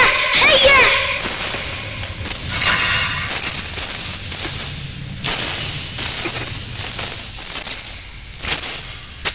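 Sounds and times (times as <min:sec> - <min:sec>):
heavy impacts: 0:00.2 - 0:07.9
tinkling, scattering glass shards: 0:01.5 - 0:09.3
soldiers smashing glass to pieces: 0:03.3 - 0:09.0.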